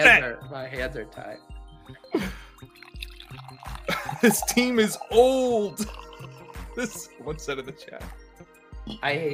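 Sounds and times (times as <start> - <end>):
speech: 0.0 - 8.2, 8.9 - 9.3
coffee pouring into a cup: 2.5 - 7.1.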